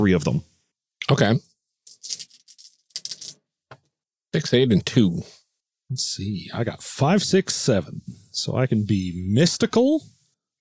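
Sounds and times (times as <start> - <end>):
speech: 0.0 - 2.2, 4.3 - 10.5
dice clattering and rattling across a hard surface: 1.9 - 3.4.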